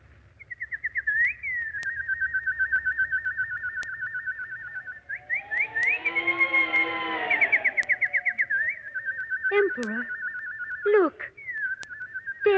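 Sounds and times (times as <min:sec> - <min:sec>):
nightingale singing: 0:00.3 - 0:12.5
speech: 0:09.8 - 0:10.2, 0:10.8 - 0:11.4.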